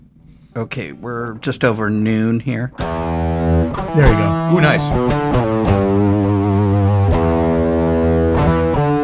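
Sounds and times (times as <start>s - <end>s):
speech: 0.5s - 6.4s
electric guitar chords through mild distortion pedal with light gritty overdrive: 2.8s - 9.0s.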